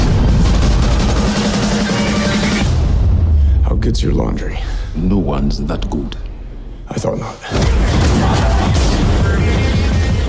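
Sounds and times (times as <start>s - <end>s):
rapid gunshots from a movie trailer: 0.0s - 2.7s, 7.5s - 10.2s
speech: 4.0s - 6.2s, 6.9s - 8.5s.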